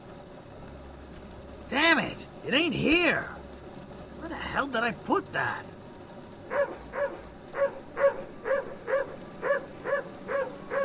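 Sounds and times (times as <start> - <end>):
speech: 1.7 - 3.4, 4.6 - 5.7
pack of dogs barking: 6.5 - 10.8.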